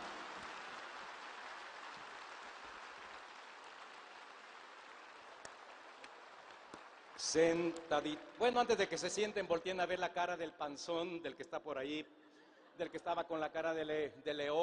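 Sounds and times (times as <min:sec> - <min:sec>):
audience applause: 0:00.0 - 0:08.6
speech: 0:07.2 - 0:12.2, 0:12.8 - 0:14.6.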